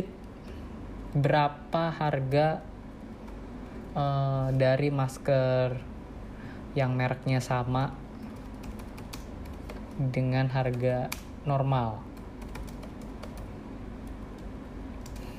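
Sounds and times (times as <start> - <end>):
speech: 1.2 - 2.7, 3.9 - 5.9, 6.8 - 8.0, 10.0 - 12.1
computer keyboard typing: 8.2 - 10.0, 12.1 - 15.3.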